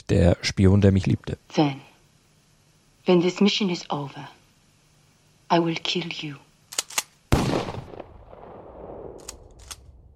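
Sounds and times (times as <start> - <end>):
speech: 0.1 - 1.9, 3.1 - 4.4, 5.5 - 6.4
sharp gunshots inside a house: 7.3 - 9.8.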